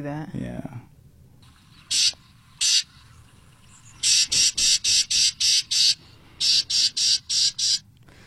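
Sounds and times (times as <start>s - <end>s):
faint noise: 0.0s - 8.2s
Carolina wren agitated call: 1.4s - 7.9s.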